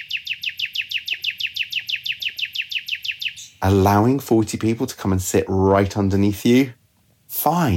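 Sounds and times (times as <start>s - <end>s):
male songbird singing to attract a female: 0.0s - 4.2s
speech: 3.6s - 6.8s, 7.4s - 7.7s.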